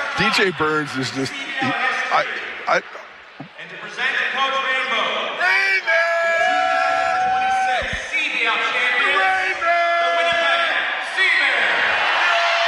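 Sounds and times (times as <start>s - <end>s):
big arena crowd roaring and whooping: 0.0s - 2.8s, 5.4s - 12.6s
speech: 0.2s - 4.7s.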